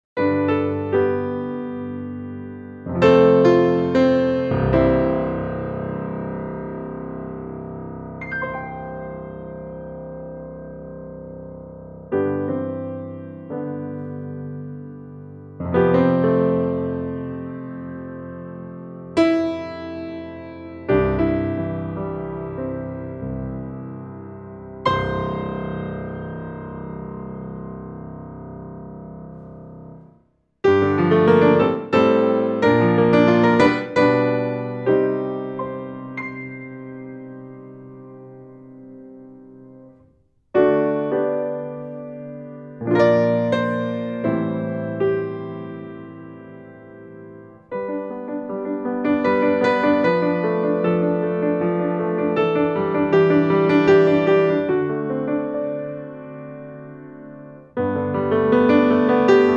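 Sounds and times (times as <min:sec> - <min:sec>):
Vienna Imperial piano: 0:00.0 - 0:59.5.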